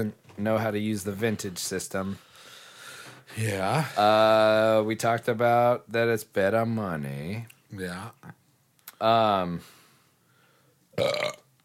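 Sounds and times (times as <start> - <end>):
speech: 0.0 - 2.5, 3.3 - 8.4, 9.0 - 9.8, 11.0 - 11.4
burp: 10.9 - 11.5.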